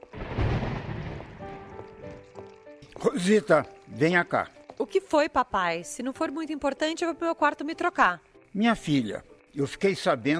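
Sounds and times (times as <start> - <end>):
steady rain hissing: 0.0 - 10.3
deep rumble of thunder: 0.1 - 1.6
speech: 3.0 - 10.3.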